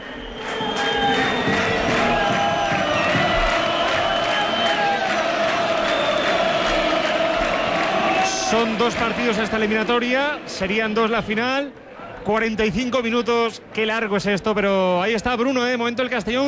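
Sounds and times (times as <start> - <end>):
football stadium crowd chanting: 0.0 - 11.3
football stadium crowd cheering at half-time: 0.0 - 14.8
speech: 8.6 - 16.4.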